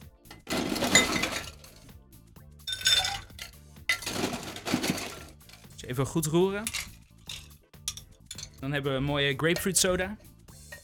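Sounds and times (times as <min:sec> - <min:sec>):
ice cubes clinking into a highball glass while making a grapefruit soda drink: 0:00.3 - 0:01.9, 0:02.7 - 0:05.8, 0:06.6 - 0:08.6
speech: 0:05.9 - 0:06.9, 0:08.6 - 0:10.3.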